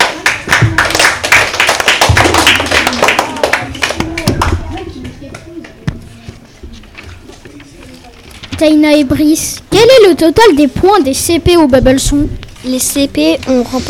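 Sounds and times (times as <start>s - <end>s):
audience applause in a room: 0.0s - 4.5s
speech: 8.6s - 13.8s.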